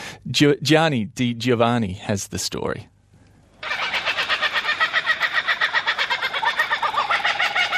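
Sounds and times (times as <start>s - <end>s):
speech: 0.3s - 2.9s
kookaburra laughing call: 3.6s - 7.7s.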